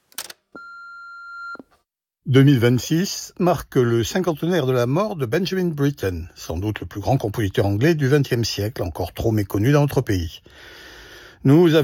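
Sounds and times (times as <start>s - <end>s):
answering machine beep on a message line: 0.6s - 1.7s
speech: 2.3s - 10.8s, 11.4s - 11.8s.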